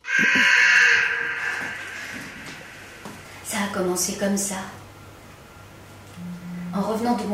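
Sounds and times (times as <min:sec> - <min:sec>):
carrion crow cawing: 0:00.0 - 0:02.9
speech: 0:00.2 - 0:00.6, 0:03.7 - 0:04.8, 0:06.8 - 0:07.3.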